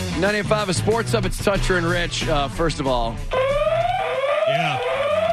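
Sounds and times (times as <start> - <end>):
speech: 0.2 - 3.4
loud electronic alarm blaring in a studio: 3.2 - 5.3.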